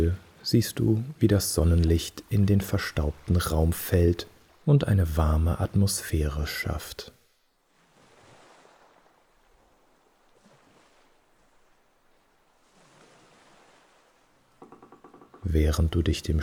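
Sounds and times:
speech: 0:00.0 - 0:07.2, 0:15.5 - 0:16.4
waves rolling onto the shore: 0:00.0 - 0:16.4
rhythmic creak-like sound: 0:14.6 - 0:15.6.

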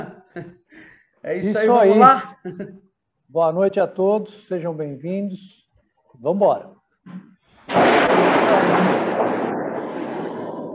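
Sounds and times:
speech: 0:00.0 - 0:00.6, 0:01.2 - 0:05.6, 0:06.2 - 0:09.6
laughter: 0:02.1 - 0:02.8
thunder from a nearby lightning strike: 0:07.7 - 0:10.7.

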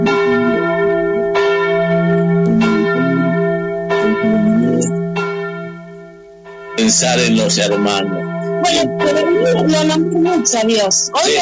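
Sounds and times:
church bells ringing: 0:00.0 - 0:11.3
speech: 0:06.8 - 0:11.3.

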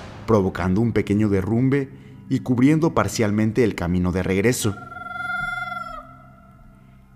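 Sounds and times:
speech: 0:00.3 - 0:04.9
creature's desperate shrill shriek: 0:04.7 - 0:06.6.

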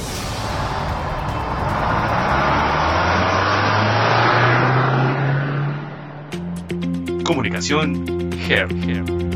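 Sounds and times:
car engine revving: 0:00.0 - 0:06.8
speech: 0:07.6 - 0:09.2.

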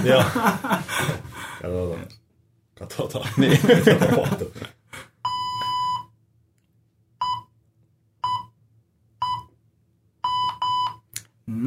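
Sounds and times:
laughter: 0:00.0 - 0:01.6, 0:03.1 - 0:04.8
speech: 0:00.0 - 0:02.2, 0:02.8 - 0:05.1, 0:11.5 - 0:11.6
electronic timer warning beeps: 0:05.3 - 0:06.1, 0:07.2 - 0:07.6, 0:08.2 - 0:08.6, 0:09.2 - 0:09.5, 0:10.2 - 0:11.1.

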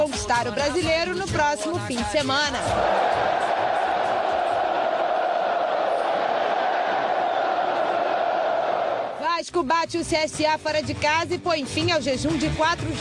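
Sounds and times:
speech: 0:00.2 - 0:03.5, 0:09.5 - 0:12.9
stadium crowd of football fans chanting a championship cry in unison: 0:02.6 - 0:09.2.

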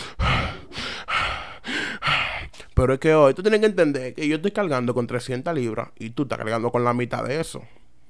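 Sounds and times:
man breathing heavily out of breath: 0:00.0 - 0:02.7
speech: 0:02.8 - 0:07.8.

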